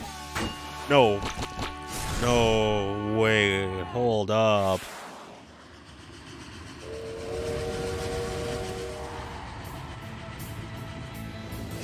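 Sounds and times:
speech: 0.9s - 1.6s, 2.2s - 5.0s
rumble and hiss of a moving train: 4.9s - 11.8s
steam train whistle: 6.8s - 10.1s.

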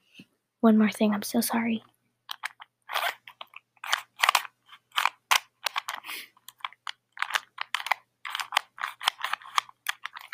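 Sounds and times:
speech: 0.6s - 1.9s
Rubik's Cube being twisted quickly: 2.3s - 10.3s.

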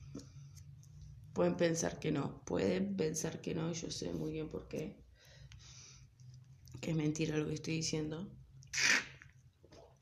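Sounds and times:
low steady hum: 0.0s - 10.0s
speech: 1.4s - 5.0s, 6.8s - 9.0s
slurping mate through a metal straw: 8.7s - 9.3s.

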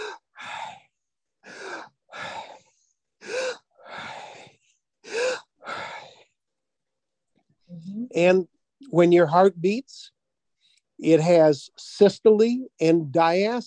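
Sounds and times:
person breathing heavily with exaggerated gasping inhales and breathy exhales: 0.0s - 0.8s, 1.4s - 6.2s
speech: 8.2s - 10.1s, 11.0s - 13.6s.

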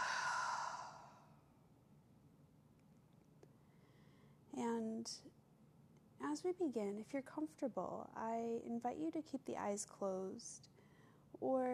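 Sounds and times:
open-mouthed exhale during a breathing exercise: 0.0s - 1.3s
speech: 4.6s - 5.4s, 6.2s - 10.8s, 11.4s - 11.7s.

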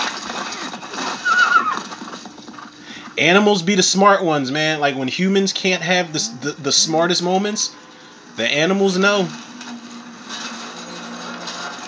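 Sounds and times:
dense noisy background: 0.0s - 11.8s
horse neighing in a film scene: 1.1s - 2.0s
speech: 3.2s - 7.8s, 8.4s - 9.4s.

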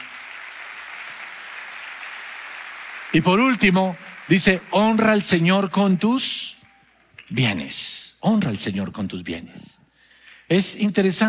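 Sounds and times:
congregation applauding: 0.0s - 6.9s
speech: 3.1s - 6.6s, 7.3s - 9.8s, 10.5s - 11.2s.

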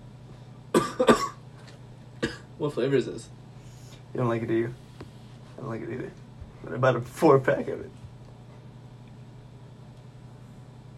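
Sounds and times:
person coughing after exhaling vape: 0.7s - 1.4s, 2.2s - 2.6s
speech: 1.0s - 1.4s, 2.6s - 3.4s, 4.1s - 4.8s, 5.6s - 8.0s.

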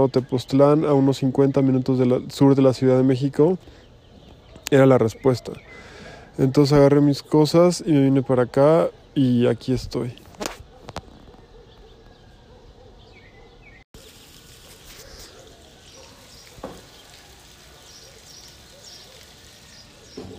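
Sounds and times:
speech: 0.0s - 3.8s, 4.7s - 10.3s
water overflowing and splashing from a rooftop water tank in Tepoztlán Mexico: 14.0s - 20.3s.

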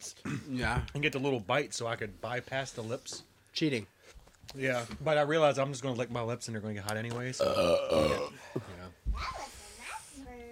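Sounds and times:
speech: 0.0s - 9.4s
loud burp with a drawn-out voiced croak: 7.4s - 8.6s
throaty vocal noises: 7.4s - 8.6s.

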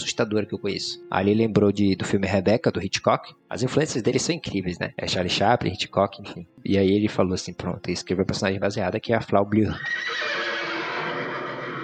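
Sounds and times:
speech: 0.1s - 10.6s
several horses neighing and whinnying wildly in a film scene: 9.8s - 11.8s.

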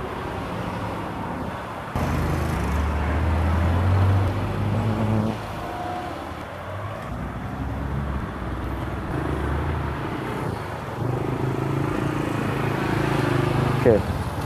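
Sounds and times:
constant wash of road noise: 0.0s - 14.4s
low engine rumble from vehicles idling and passing at a bus stop: 0.0s - 14.4s.

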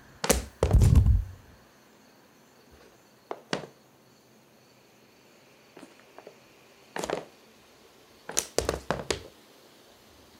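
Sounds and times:
faint hum: 0.0s - 10.3s
sneakers thumping on a bedroom floor: 0.2s - 1.4s, 3.3s - 3.7s, 7.0s - 7.3s, 8.3s - 9.3s.

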